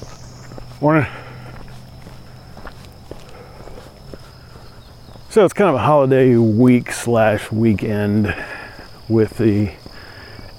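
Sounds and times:
footsteps of a person jogging past: 0.0 - 5.4, 8.3 - 10.5
speech: 0.8 - 1.2, 5.4 - 8.5, 9.1 - 9.8.

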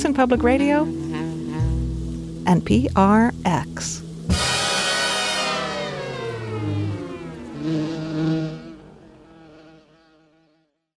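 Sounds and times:
bees buzzing: 0.0 - 10.4
speech: 0.2 - 1.0, 2.4 - 4.0.

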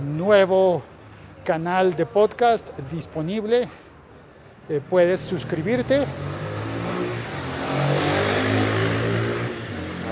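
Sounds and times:
speech: 0.3 - 3.8, 4.7 - 6.3
motorcycle engine revving as it climbs uphill: 5.2 - 10.0.

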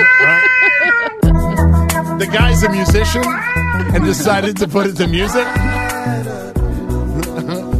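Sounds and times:
cat yowling in alarm: 0.0 - 1.2, 2.6 - 4.1, 5.2 - 6.1
laughter: 0.0 - 1.4, 3.0 - 6.0, 7.1 - 7.7
speech: 2.3 - 6.4.

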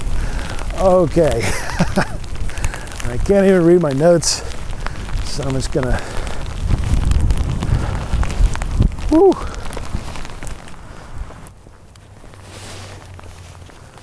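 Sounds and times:
gusty wind buffeting the microphone: 0.0 - 12.3
blowing rain pattering on the microphone: 0.0 - 14.0
speech: 0.8 - 2.2, 3.1 - 4.5, 5.4 - 6.2, 9.1 - 9.6
person exclaiming: 9.0 - 9.6.

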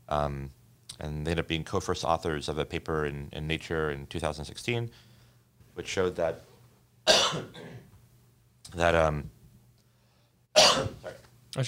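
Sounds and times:
speech: 0.1 - 5.1, 5.8 - 6.5, 7.3 - 7.8, 8.7 - 9.4, 10.8 - 11.6
coughs: 7.0 - 8.0, 10.6 - 11.2.

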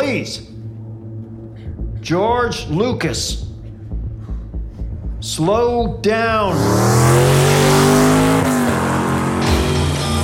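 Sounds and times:
speech: 0.1 - 0.6, 2.0 - 3.5, 5.2 - 7.8
race car engine revving and accelerating past: 6.5 - 10.2.

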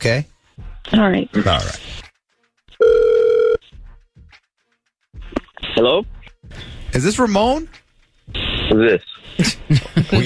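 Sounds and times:
speech: 0.0 - 0.3, 0.9 - 1.9, 5.8 - 10.2
electronic ringback tone of an outgoing phone call: 2.8 - 3.6
laughter: 9.2 - 10.2.

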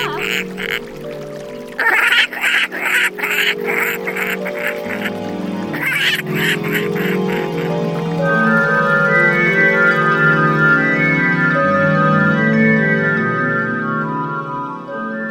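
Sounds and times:
duck quacking in raspy calls: 0.0 - 0.8, 1.8 - 5.1, 5.7 - 7.7
steady music: 0.0 - 15.2
speech: 0.4 - 5.2, 6.0 - 8.7.

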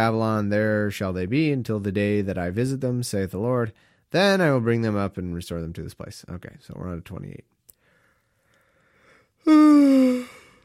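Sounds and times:
speech: 0.0 - 7.5, 9.4 - 10.4
person yawning while reading scripture aloud: 9.4 - 10.6.

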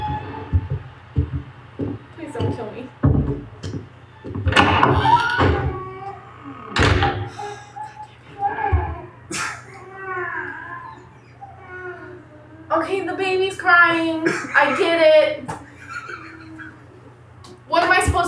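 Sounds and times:
wooden door opening with thunks and creaks: 0.0 - 5.9, 6.8 - 7.3
low steady hum: 0.0 - 18.2
laughter: 9.3 - 10.0, 14.2 - 17.2
speech: 13.9 - 15.5.

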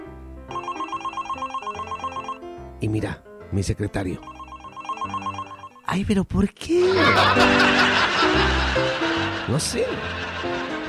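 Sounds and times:
office telephone ringing with trilling electronic bell: 0.5 - 2.4, 4.2 - 5.9
speech: 2.8 - 4.3, 5.9 - 10.6
laughter: 6.8 - 10.8.

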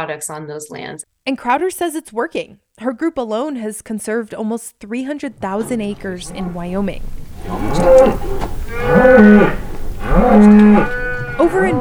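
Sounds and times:
speech: 0.0 - 9.6, 10.2 - 11.7
cattle on a cattle ranch at the base of the mountains mooing: 7.3 - 10.5.

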